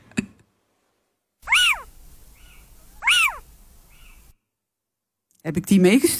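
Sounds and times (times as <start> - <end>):
Little Owl calling with plaintive mewing notes: 1.4 - 4.3
speech: 5.4 - 6.1.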